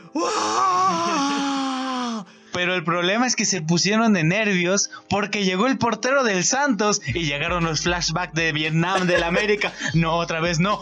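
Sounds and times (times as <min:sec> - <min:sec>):
person imitating a football stadium crowd's anguished groan: 0:00.1 - 0:02.3
speech: 0:02.6 - 0:10.8
laughter: 0:08.8 - 0:10.8.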